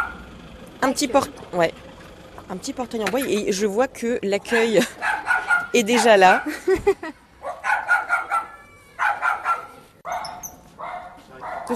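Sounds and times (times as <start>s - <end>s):
dogs barking at the reception entrance of an animal shelter: 0.0s - 0.2s, 4.5s - 6.6s, 7.4s - 11.7s
speech: 0.9s - 1.9s, 2.5s - 7.2s
dog whining: 7.5s - 10.6s.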